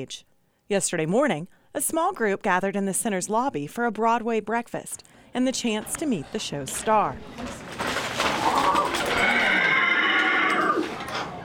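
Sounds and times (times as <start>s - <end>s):
speech: 0.0s - 7.6s
horse whinny from life-sized horse puppet in an arts center lobby: 8.4s - 11.1s.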